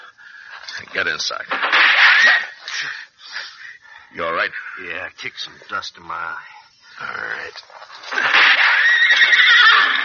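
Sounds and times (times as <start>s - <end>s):
speech: 0.8s - 3.0s, 4.2s - 7.8s
wounded horse whinnying during a shootout: 8.0s - 10.0s.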